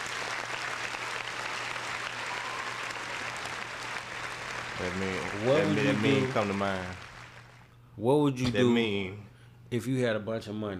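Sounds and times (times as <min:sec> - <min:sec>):
crowd applauding: 0:00.0 - 0:07.7
speech: 0:04.8 - 0:07.0, 0:08.0 - 0:10.7.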